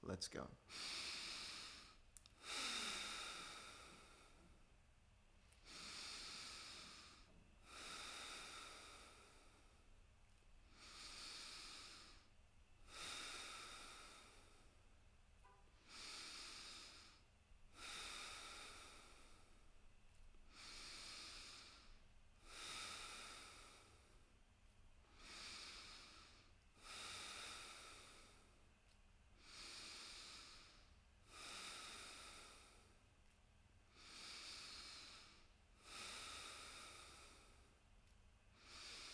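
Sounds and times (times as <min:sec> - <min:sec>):
speech: 0:00.0 - 0:01.1
deep inhaling during breathing exercise: 0:00.7 - 0:04.7, 0:05.4 - 0:24.4, 0:25.0 - 0:28.7, 0:29.4 - 0:33.1, 0:33.9 - 0:37.8, 0:38.5 - 0:39.1.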